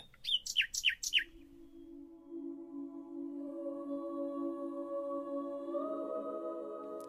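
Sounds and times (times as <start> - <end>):
male nightingale singing: 0.0 - 2.3
steady sustained musical drone: 1.3 - 7.0.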